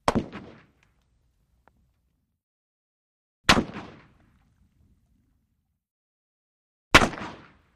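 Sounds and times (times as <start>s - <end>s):
Russian SKS rifle single shot: 0.0s - 0.8s, 3.5s - 4.2s, 6.9s - 7.7s.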